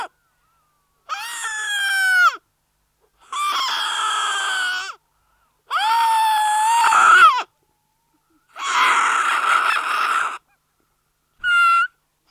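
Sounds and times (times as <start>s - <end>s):
young seal giving rough nasal wails: 1.1s - 2.4s, 3.2s - 5.0s, 5.7s - 7.5s, 8.1s - 10.5s, 11.4s - 12.3s.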